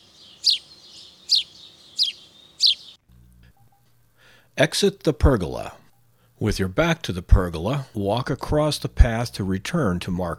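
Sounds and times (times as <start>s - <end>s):
house sparrow chirping: 0.0s - 3.0s
speech: 4.6s - 5.8s, 6.4s - 10.3s.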